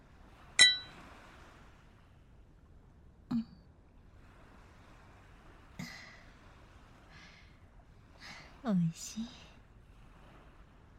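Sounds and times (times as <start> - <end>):
glasses of local liquor clinking in a toast: 0.6 - 1.0
speech: 8.6 - 9.4.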